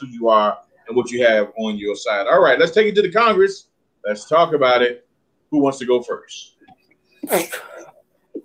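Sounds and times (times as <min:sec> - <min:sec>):
speech: 0:00.0 - 0:06.5, 0:07.2 - 0:08.4
person sneezing: 0:07.2 - 0:08.4.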